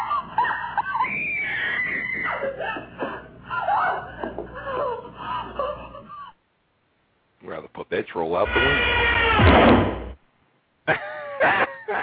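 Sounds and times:
laughter: 0:00.0 - 0:06.4, 0:10.9 - 0:12.0
speech: 0:07.9 - 0:10.0
man screaming and yelling through a tinny telephone line: 0:08.5 - 0:09.2.

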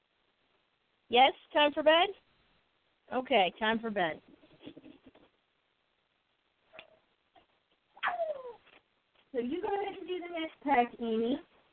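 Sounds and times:
speech: 0:01.1 - 0:02.2, 0:03.1 - 0:04.4, 0:09.3 - 0:11.5
pet bird squawking: 0:08.0 - 0:08.6.

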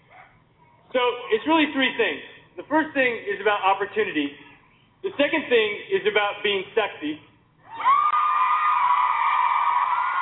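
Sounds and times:
speech: 0:00.9 - 0:04.4, 0:05.0 - 0:07.9
audience screaming and cheering during a recorded speech: 0:07.7 - 0:10.2.

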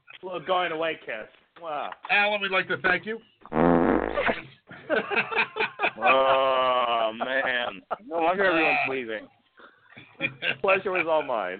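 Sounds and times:
speech: 0:00.2 - 0:09.4, 0:10.2 - 0:11.5
loud buzzy fart sound: 0:03.5 - 0:04.5
people talking and laughing: 0:04.1 - 0:11.5.

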